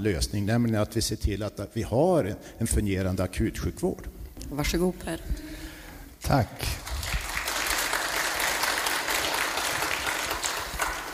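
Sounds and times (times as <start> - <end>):
speech: 0.0 - 5.6, 6.2 - 6.9
audience applause: 6.6 - 11.1.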